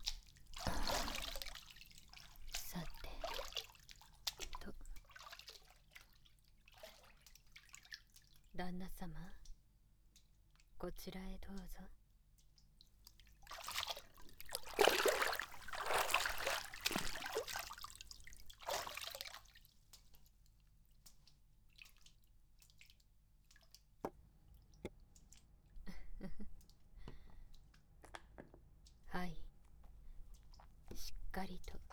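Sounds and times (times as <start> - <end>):
water splashing while feet are washed: 0.0 - 8.0, 13.4 - 19.7
water dripping: 0.0 - 8.5, 9.1 - 31.9
water pouring and sloshing: 0.0 - 8.5, 12.2 - 28.0, 28.6 - 31.9
speech: 8.6 - 9.4, 10.8 - 12.0.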